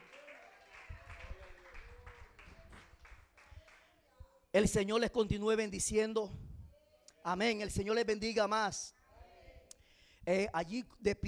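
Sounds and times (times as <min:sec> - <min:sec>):
crowd clapping during an evening prayer: 0:00.0 - 0:04.0
speech: 0:04.6 - 0:06.4, 0:07.2 - 0:09.0, 0:10.3 - 0:11.2.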